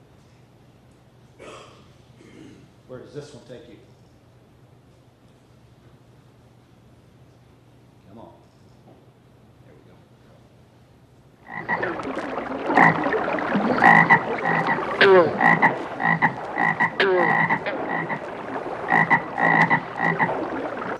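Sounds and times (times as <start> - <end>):
speech: 2.9 - 4.0
chorus of frogs croaking at a pond: 11.4 - 20.9.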